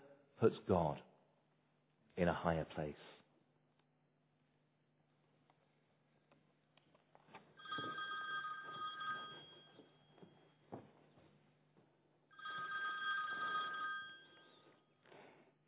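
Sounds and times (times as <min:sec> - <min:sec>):
speech: 0:00.4 - 0:01.1, 0:02.2 - 0:03.2
telephone ringing: 0:07.6 - 0:10.5, 0:12.3 - 0:14.8.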